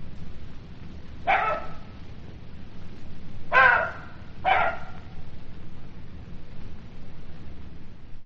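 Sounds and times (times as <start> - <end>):
constant low background hum: 0.0 - 8.2
jackal giving sharp raspy barks: 1.2 - 2.0, 3.5 - 5.2.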